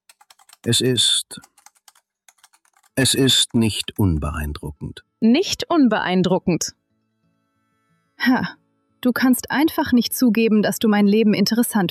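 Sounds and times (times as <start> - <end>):
woman typing on a computer keyboard at a dental practice: 0.0 - 4.0
speech: 0.6 - 1.5, 3.0 - 6.8, 8.2 - 11.8.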